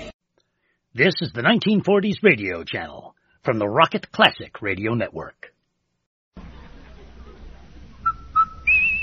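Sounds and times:
speech: 1.0s - 5.5s
whistled tones: 8.0s - 8.9s.

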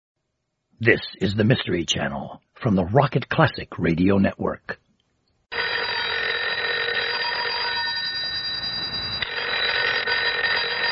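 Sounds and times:
speech: 0.8s - 4.8s
telephone bell ringing with a harsh metallic jangle: 5.5s - 10.9s.

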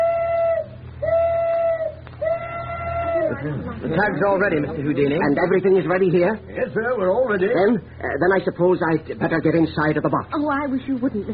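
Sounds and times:
tugboat steam whistle long steady blasts: 0.0s - 3.3s
low constant rumble: 0.0s - 11.3s
speech: 3.4s - 11.3s.

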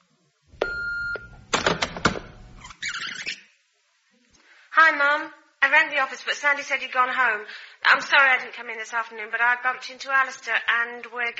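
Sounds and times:
answering machine electronic beep: 0.6s - 2.6s
sharp mechanical clunks of an answering machine: 0.6s - 2.8s
speech: 4.9s - 11.3s.

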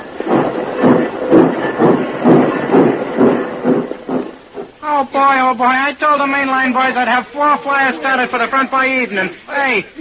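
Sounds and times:
tiny steam locomotive chuffing in a congested railroad yard: 0.0s - 4.8s
speech: 5.0s - 10.0s.

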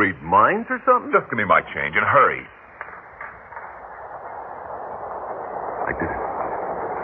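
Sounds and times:
speech: 0.3s - 2.6s, 5.9s - 6.2s
subway train rumbling into the station: 3.7s - 7.0s.

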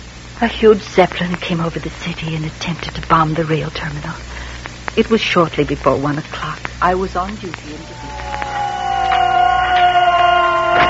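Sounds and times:
speech: 0.4s - 8.3s
air raid siren wailing during a zeppelin bombing raid on a city: 7.7s - 10.8s.

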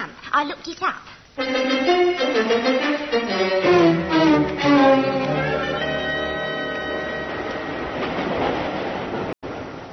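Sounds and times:
speech: 0.4s - 4.0s
train running along the rails on a long journey from Victoria: 3.7s - 9.6s.

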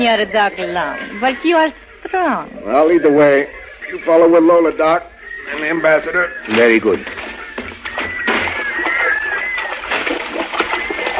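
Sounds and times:
speech: 0.0s - 7.2s
faint thin whistling calls: 0.0s - 11.1s
water sloshing and splashing as people wade knee-deep through a river: 6.4s - 11.1s.

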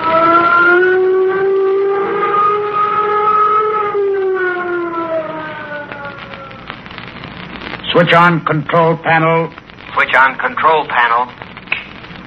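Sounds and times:
flight warning siren wailing on a steady loud tone: 0.0s - 6.9s
speech: 8.0s - 9.6s, 10.2s - 11.4s.

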